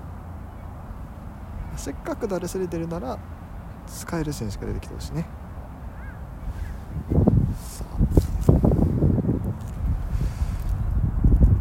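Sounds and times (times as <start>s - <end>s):
speech: 1.8s - 5.4s
strong seaside wind buffeting the microphone: 4.4s - 11.5s.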